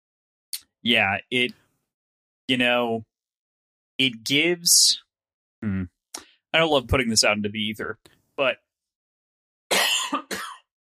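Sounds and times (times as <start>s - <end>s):
speech: 0.8s - 1.6s, 2.5s - 3.1s, 4.0s - 5.0s, 5.6s - 8.6s
harsh forceful rasping cough: 9.7s - 10.7s.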